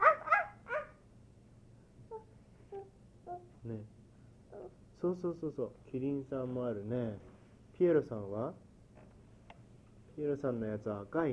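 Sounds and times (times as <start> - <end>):
dog barking: 0.0 - 1.0
speech: 3.6 - 4.0, 5.0 - 8.6, 10.2 - 11.3.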